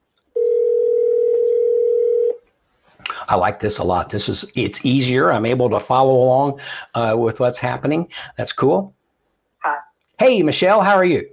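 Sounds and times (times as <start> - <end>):
telephone dial tone: 0.4 - 2.4
speech: 3.3 - 9.0, 9.6 - 11.3.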